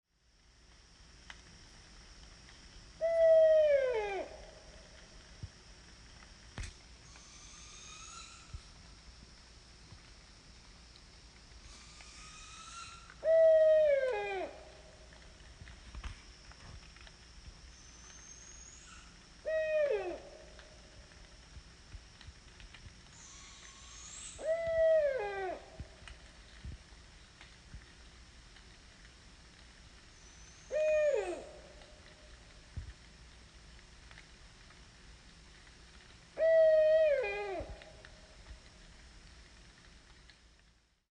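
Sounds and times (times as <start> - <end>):
Barred Owl in the woods: 3.0 - 4.6, 7.0 - 8.5, 11.7 - 14.8, 17.8 - 20.5, 23.2 - 25.9, 30.2 - 31.8, 36.4 - 38.0.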